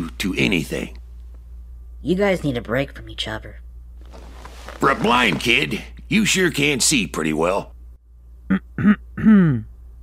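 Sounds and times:
speech: 0.2s - 1.0s, 2.0s - 3.6s, 4.8s - 7.7s, 8.5s - 9.7s
woman clearing her throat: 8.5s - 9.7s.

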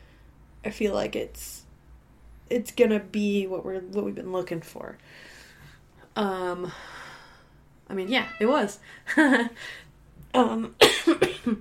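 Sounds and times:
speech: 0.6s - 1.6s, 2.5s - 5.4s, 6.2s - 7.0s, 7.9s - 11.5s
person at the end of a cold coughing in a loud fit: 10.8s - 11.5s.

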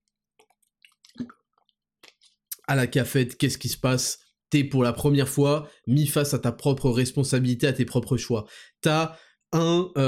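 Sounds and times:
gulp of water: 0.4s - 2.7s
person taking a sip of water: 0.4s - 2.7s
speech: 1.2s - 1.4s, 2.7s - 10.0s.

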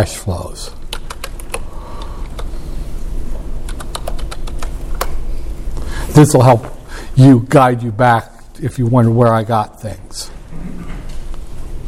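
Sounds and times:
speech: 0.0s - 0.8s, 6.2s - 11.0s
steady low hum: 0.0s - 11.8s
typing on a computer keyboard: 0.9s - 1.6s, 3.7s - 5.2s.

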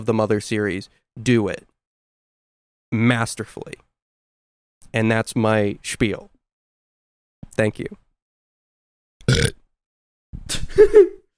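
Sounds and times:
speech: 0.0s - 1.7s, 2.9s - 3.8s, 4.9s - 6.3s, 7.6s - 8.0s, 10.4s - 11.2s
loud burp: 9.2s - 9.6s.

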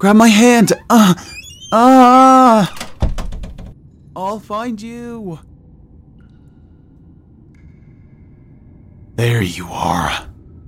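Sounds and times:
speech: 0.0s - 2.8s, 4.2s - 5.5s, 9.2s - 10.3s
trap door swinging open with a creaking groan: 1.2s - 3.8s.

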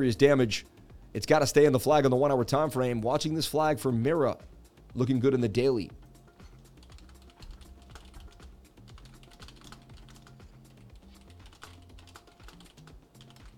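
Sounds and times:
speech: 0.0s - 6.0s
rapid typing on a computer keyboard: 6.8s - 13.5s.

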